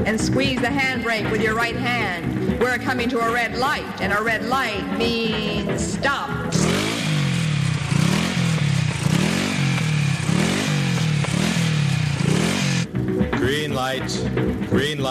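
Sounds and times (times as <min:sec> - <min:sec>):
speech: 0:00.0 - 0:06.7, 0:13.5 - 0:15.0
motorcycle engine revving, stalling and restarting: 0:06.3 - 0:13.2.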